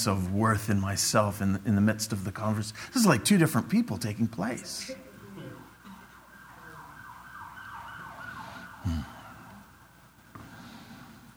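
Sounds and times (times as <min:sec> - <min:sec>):
speech: 0:00.0 - 0:05.0
emergency vehicle siren wailing outside: 0:04.9 - 0:10.0.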